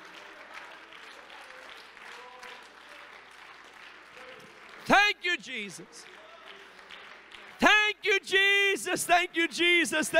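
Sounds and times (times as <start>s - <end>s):
audience clapping hands: 0.0s - 7.7s
speech: 4.9s - 6.2s, 8.0s - 10.1s.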